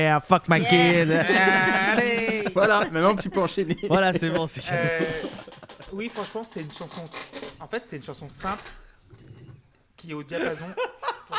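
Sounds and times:
speech: 0.0s - 8.8s, 10.0s - 11.3s
laughter: 0.6s - 6.0s, 10.4s - 11.3s
wooden stool creaking under weight: 4.7s - 9.7s.

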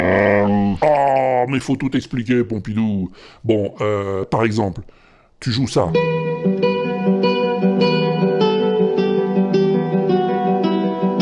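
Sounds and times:
speech: 0.8s - 6.5s
clean electric guitar playing: 5.9s - 11.2s.

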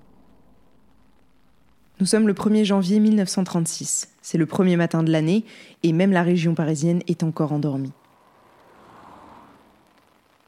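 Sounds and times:
steady dense rain pouring onto a road: 0.0s - 10.4s
speech: 2.0s - 8.0s.

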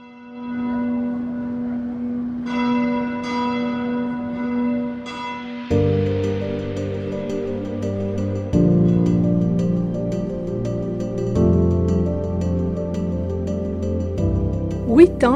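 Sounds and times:
3-tonne bourdon church bell in the diocese of Nanterre booming: 0.0s - 14.8s.

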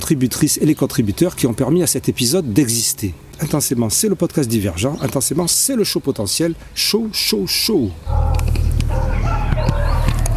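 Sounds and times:
speech: 0.1s - 8.6s
dogs barking in a fight: 8.0s - 10.3s.

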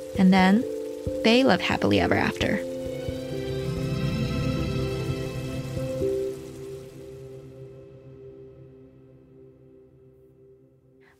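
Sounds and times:
bacon frying in a pan: 0.0s - 7.3s
speech: 0.1s - 2.7s.

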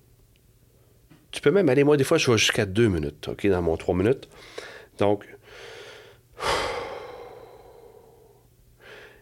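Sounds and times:
speech: 1.4s - 5.7s
slow deep breathing for meditation: 4.3s - 9.2s.

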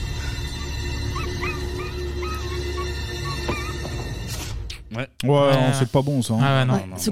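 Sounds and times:
dog yelping and whimpering in distress: 0.6s - 4.0s
speech: 5.0s - 7.1s.

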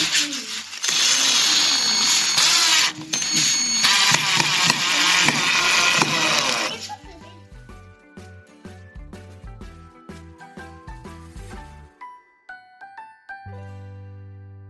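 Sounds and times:
power screwdriver or drill driving screws into a carnival king figure: 0.0s - 6.9s.

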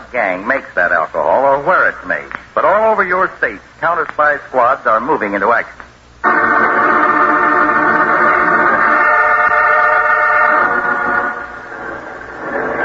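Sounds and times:
speech: 0.1s - 6.7s
heavy truck engine roaring on the road: 6.2s - 12.8s.

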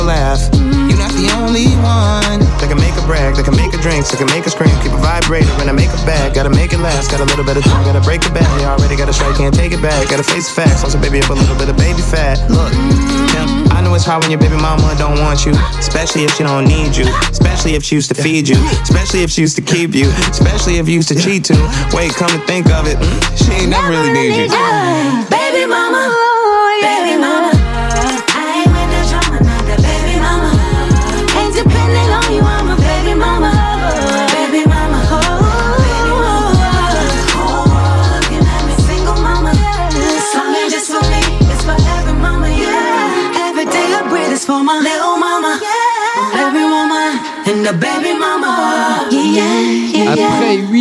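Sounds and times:
deep sustained bass: 0.0s - 4.1s, 4.7s - 10.0s, 10.7s - 16.1s, 16.7s - 17.8s, 20.0s - 20.9s, 22.7s - 23.8s, 28.7s - 34.0s, 34.7s - 40.0s
loud polished R&B track: 0.0s - 50.7s
rap verse: 0.0s - 50.7s
smooth melodic vocals with layered harmonies: 0.0s - 50.7s
speech: 3.4s - 25.9s.

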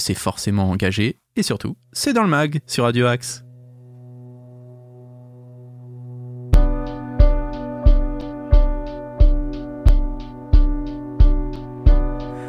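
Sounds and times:
speech: 0.0s - 3.4s
pop-rock track with drum beat and sustained chords: 6.6s - 12.4s
steady punchy drum beat: 6.6s - 12.4s.

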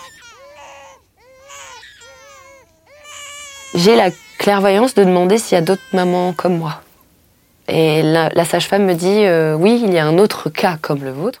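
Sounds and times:
baby wailing in strained bursts: 0.0s - 6.8s
speech: 3.7s - 6.8s, 7.7s - 11.3s.

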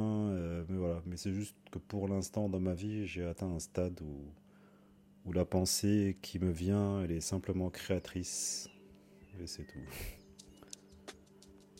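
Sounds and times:
low steady electrical hum: 0.0s - 11.7s
speech: 1.0s - 4.4s, 5.2s - 10.2s
faint clicks and light ticking sounds: 10.2s - 11.7s.

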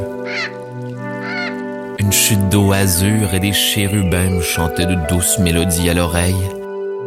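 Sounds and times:
harsh raspy bird caws: 0.0s - 2.0s
speech: 2.0s - 6.6s.

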